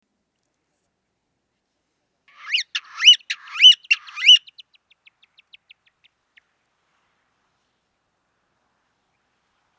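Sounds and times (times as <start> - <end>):
ground woodpecker loud harsh rising-falling squeaky calls: 2.3 - 4.6.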